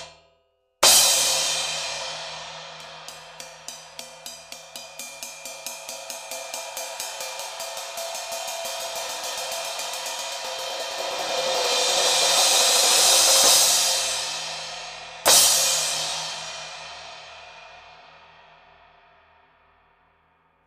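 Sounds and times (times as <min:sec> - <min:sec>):
18 inch brilliant medium crash cymbal: 0:00.8 - 0:20.0.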